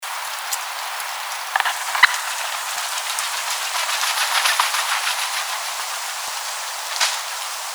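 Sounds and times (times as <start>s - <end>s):
wild turkey calling: 0.0s - 7.7s.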